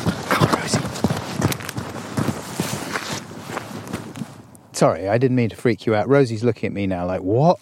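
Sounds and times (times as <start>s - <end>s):
heavy footsteps of a person running away outdoors: 0.0s - 4.5s
breathy rustle of movement: 0.0s - 4.7s
speech: 4.8s - 7.6s.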